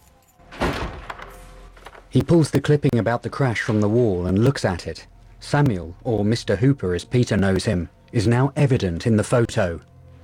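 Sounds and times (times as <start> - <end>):
apartment door swinging shut with a solid thump: 0.5 - 1.4
speech: 2.1 - 9.9.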